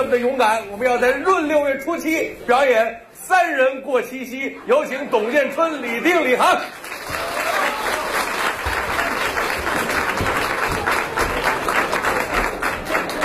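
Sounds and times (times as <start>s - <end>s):
speech: 0.0s - 7.3s
live crosstalk comedy audience applause: 6.6s - 13.2s.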